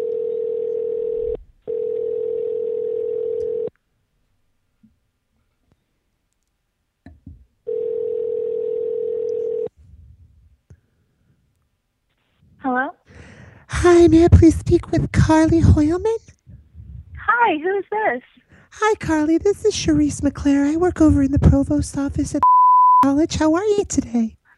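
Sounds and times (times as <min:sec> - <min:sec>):
telephone ringing tone on an outgoing phone call: 0:00.0 - 0:03.7, 0:07.7 - 0:09.7
speech: 0:14.1 - 0:16.4, 0:17.4 - 0:24.4.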